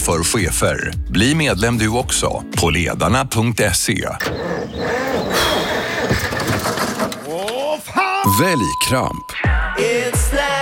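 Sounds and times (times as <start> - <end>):
speech: 0.1 - 5.6, 8.4 - 10.6
tractor engine cranking and revving: 4.2 - 7.6.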